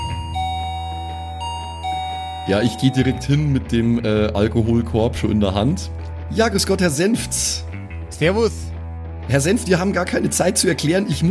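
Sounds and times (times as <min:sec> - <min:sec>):
electronic doorbell chime: 0:00.0 - 0:03.6
speech: 0:02.5 - 0:08.7, 0:09.3 - 0:11.2.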